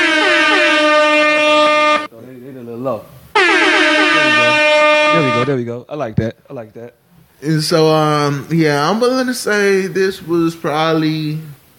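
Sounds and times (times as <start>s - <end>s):
loud sustained air horn blast with a brassy tone: 0.0s - 2.1s, 3.4s - 5.6s
speech: 2.8s - 3.1s, 5.5s - 11.5s.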